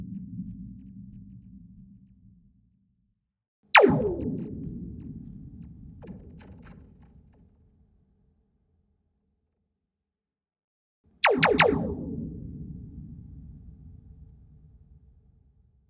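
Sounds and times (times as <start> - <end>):
laser ray gun blasts: 3.7 - 7.5, 11.2 - 12.0.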